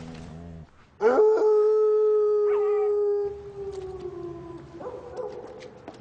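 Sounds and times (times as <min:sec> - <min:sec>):
dog howling: 0:01.0 - 0:05.1.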